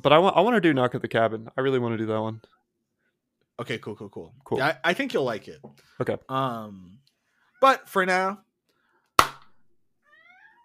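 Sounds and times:
speech: 0.0 - 2.6, 3.6 - 7.0, 7.6 - 8.4
cat meowing: 10.0 - 10.6.

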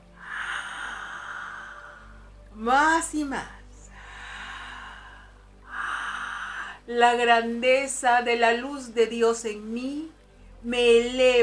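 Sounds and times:
slow deep breathing: 0.0 - 2.5, 3.6 - 6.9
speech: 2.6 - 3.6, 6.9 - 11.4.

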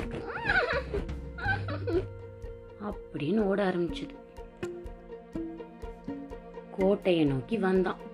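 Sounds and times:
person imitating a horse neighing: 0.1 - 2.1
speech: 3.1 - 4.2, 6.8 - 8.1.

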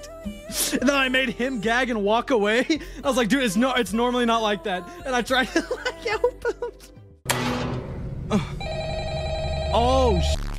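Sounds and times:
speech: 0.2 - 7.0, 9.8 - 10.4
laughter: 5.4 - 6.9
video game sounds: 7.3 - 10.5
video game telephone ringing with electronic tone: 8.6 - 10.2.

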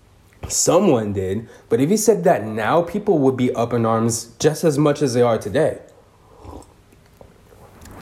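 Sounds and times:
speech: 0.5 - 5.9
soft slurping and wet mouth sounds: 5.9 - 8.0
person sipping hot tea: 6.2 - 8.0.

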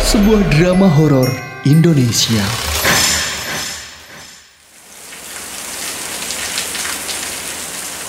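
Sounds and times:
speech: 0.1 - 2.7
heavy rain: 4.6 - 8.0.

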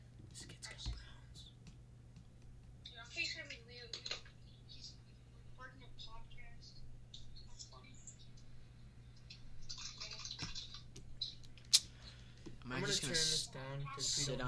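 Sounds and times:
steady electrical hum: 0.0 - 14.4
computer keyboard key clicks: 3.9 - 4.3
speech: 12.9 - 14.4.

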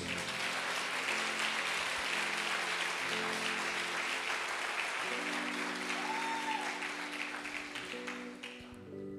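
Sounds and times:
large crowd at a religious service applauding: 0.0 - 9.1.

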